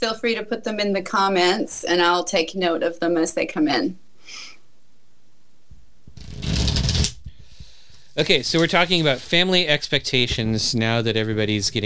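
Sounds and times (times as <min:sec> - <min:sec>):
speech: 0:00.0 - 0:04.5, 0:08.2 - 0:11.8
deck of tarot cards being shuffled: 0:06.1 - 0:09.4.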